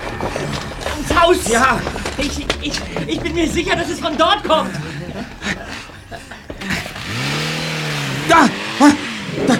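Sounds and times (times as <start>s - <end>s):
laughter: 0.3s - 9.5s
speech: 1.3s - 4.9s, 8.3s - 9.0s
car engine starting and revving as the vehicle pulls away: 6.5s - 9.5s.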